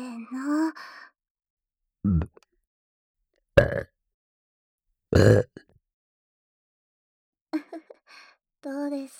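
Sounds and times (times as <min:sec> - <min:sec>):
speech: 0:02.0 - 0:02.4
loud burps: 0:02.1 - 0:02.4, 0:03.6 - 0:03.9, 0:05.2 - 0:05.6
short softer throaty sounds: 0:02.1 - 0:02.4.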